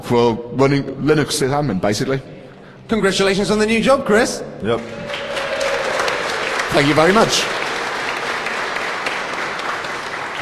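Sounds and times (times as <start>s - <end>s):
speech: 0.1s - 5.3s, 6.7s - 7.6s
crowd clapping: 4.7s - 10.3s.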